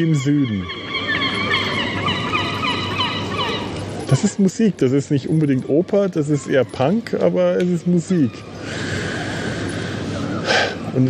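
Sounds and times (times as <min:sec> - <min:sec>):
speech: 0:00.0 - 0:00.9, 0:04.1 - 0:09.0
seagulls calling at the coast: 0:00.0 - 0:11.0
steady rushing noise: 0:00.0 - 0:11.0.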